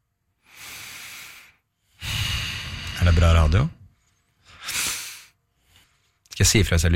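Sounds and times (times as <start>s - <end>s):
slow steady breathing close to the microphone: 0.3s - 6.2s
speech: 3.1s - 3.8s, 6.4s - 6.9s.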